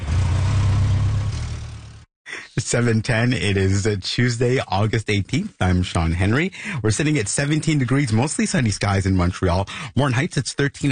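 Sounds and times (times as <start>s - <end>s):
motorbike engine idling: 0.0s - 2.0s
speech: 2.7s - 10.8s.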